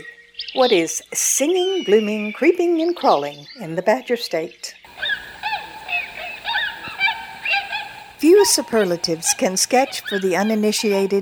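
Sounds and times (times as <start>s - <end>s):
speech: 0.0s - 4.8s, 8.2s - 11.2s
tundra swans calling in flight: 4.9s - 9.4s.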